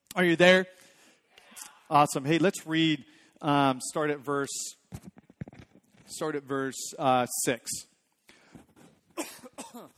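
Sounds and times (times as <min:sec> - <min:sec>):
speech: 0:00.2 - 0:00.8, 0:01.6 - 0:05.2, 0:06.1 - 0:07.9, 0:09.2 - 0:09.9
person coughing and clearing throat from a tickle in the throat: 0:09.2 - 0:09.9.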